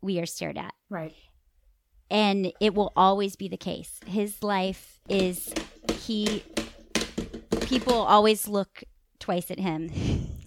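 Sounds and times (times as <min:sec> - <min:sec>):
speech: 0:00.0 - 0:01.3, 0:02.1 - 0:06.6, 0:07.7 - 0:10.3
child banging object on tabletop: 0:05.1 - 0:08.2.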